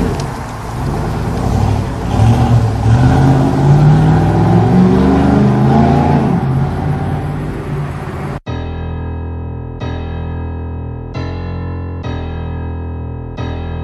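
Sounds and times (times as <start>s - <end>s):
Chevette car engine revving as the car arrives: 0.0s - 8.5s.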